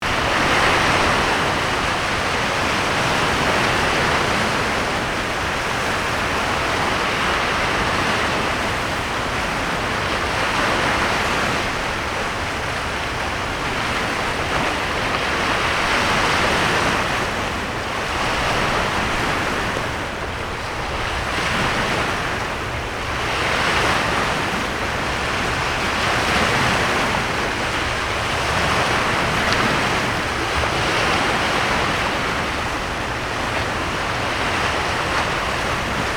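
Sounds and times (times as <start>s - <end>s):
sea: 0.0s - 36.1s.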